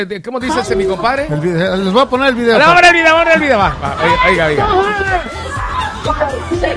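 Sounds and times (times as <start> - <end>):
speech: 0.0 - 5.4, 6.0 - 6.7
dense babble of voices: 0.5 - 6.7
crowd shouting and yelling during a fight: 2.1 - 6.7.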